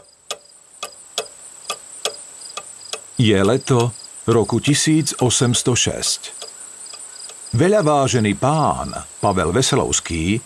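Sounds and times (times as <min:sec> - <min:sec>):
large pendulum clock ticking in a kitchen: 0:00.0 - 0:07.9
speech: 0:03.2 - 0:06.4, 0:07.5 - 0:10.4.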